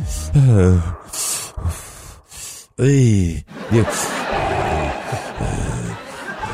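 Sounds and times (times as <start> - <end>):
voice imitating heavy rasping breathing through an oxygen mask: 0.0 - 2.8, 4.1 - 6.3
short voiced groan: 0.0 - 3.3, 4.1 - 6.0
speech: 0.4 - 1.0, 2.8 - 5.8
laughter: 3.5 - 6.5.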